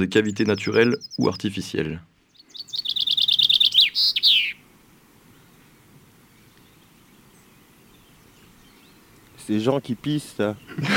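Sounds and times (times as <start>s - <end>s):
small songbird, probably a blue tit, singing a trill: 0.0s - 1.5s, 2.3s - 4.6s
speech: 0.0s - 2.1s, 9.5s - 10.9s.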